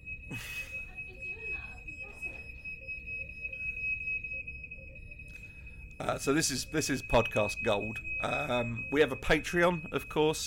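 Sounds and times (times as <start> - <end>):
smoke alarm steady piercing high-pitched tone: 0.0 - 10.4
voices: 0.3 - 2.7, 6.0 - 10.4
speech: 6.0 - 10.4.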